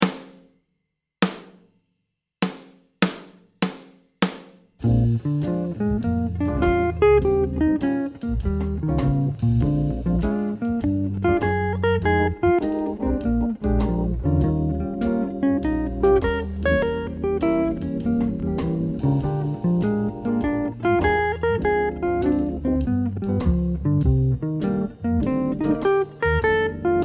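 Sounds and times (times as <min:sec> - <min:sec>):
jazz guitar playing blues arpeggios: 0:04.8 - 0:27.0.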